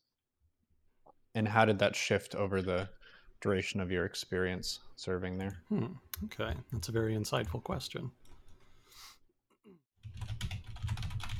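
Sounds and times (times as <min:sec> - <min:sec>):
speech: 0:01.3 - 0:08.2
typing on a computer keyboard: 0:10.0 - 0:11.3.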